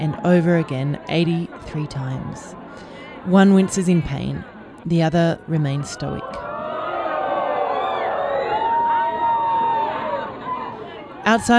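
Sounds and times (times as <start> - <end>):
speech: 0.1 - 6.5, 11.2 - 11.5
large crowd shouting, jeering and cheering: 5.6 - 11.2.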